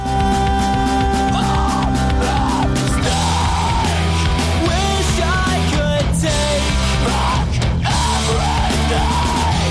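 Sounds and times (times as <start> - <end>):
harsh screamed vocals: 0.0 - 4.9, 6.9 - 9.6
distorted guitars in an emo rock song: 0.0 - 9.6
pounding drums: 0.0 - 9.6.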